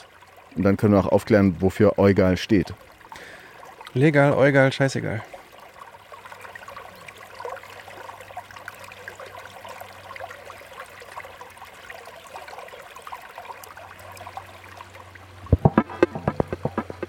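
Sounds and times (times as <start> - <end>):
babbling brook trickling and splashing: 0.0 - 17.0
speech: 0.6 - 3.3, 3.9 - 5.3
sharp rhythmic knocks or clatters: 15.5 - 17.0.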